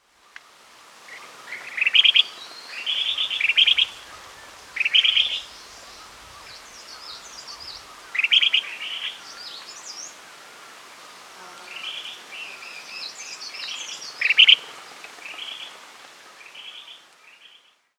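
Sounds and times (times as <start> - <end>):
crested finchbill Spizixos canifrons calling: 1.5 - 10.0.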